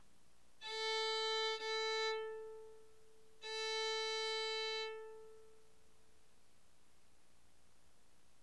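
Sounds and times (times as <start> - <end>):
violin playing A: 0.6 - 5.8.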